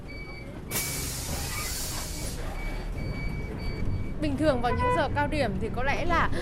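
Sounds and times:
city bus engine idling: 0.0 - 6.4
city bus air brakes or doors hissing: 0.7 - 2.5
speech: 4.2 - 6.4.

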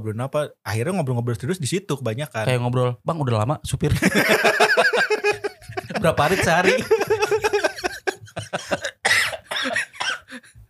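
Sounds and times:
speech: 0.0 - 5.1, 6.0 - 7.2
laughter: 4.0 - 10.4
person coughing loudly: 8.5 - 10.4.

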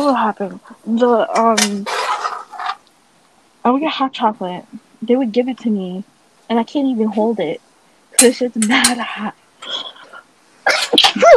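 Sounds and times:
speech: 0.0 - 2.0, 3.6 - 7.6, 8.2 - 9.9
loud sneeze: 10.6 - 11.3.

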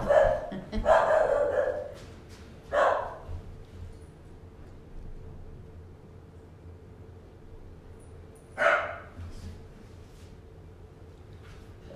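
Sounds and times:
dog barking: 0.0 - 2.0, 2.7 - 3.3, 8.6 - 9.2
low steady hum: 0.0 - 11.9.

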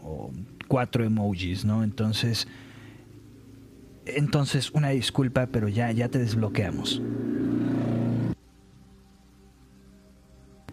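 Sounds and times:
faint hum: 0.0 - 10.7
speech: 0.7 - 2.7, 4.0 - 7.3
loud motorcycle passing by outside: 5.3 - 8.4.

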